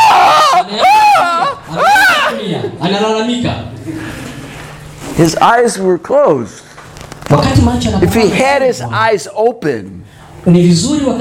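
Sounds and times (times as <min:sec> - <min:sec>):
man yelling wordless bursts: 0:00.0 - 0:02.5
speech: 0:05.2 - 0:06.7, 0:07.3 - 0:11.1.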